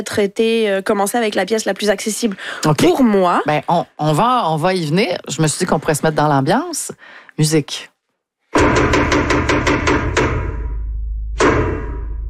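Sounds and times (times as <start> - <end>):
speech: 0.0 - 7.9, 8.6 - 10.3
traditional theatre knocks signalling the start of a play: 8.6 - 12.1.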